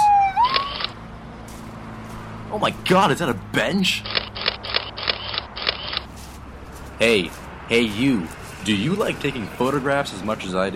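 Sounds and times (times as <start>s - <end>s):
ambulance siren wailing: 0.0s - 1.0s
speech: 2.5s - 4.2s, 7.0s - 10.7s.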